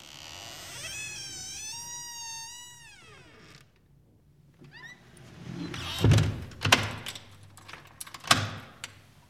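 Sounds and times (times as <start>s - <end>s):
door hinges creaking with a long wavering squeal: 0.0s - 3.7s, 4.7s - 7.2s
door swinging shut with a solid thud: 5.7s - 7.1s.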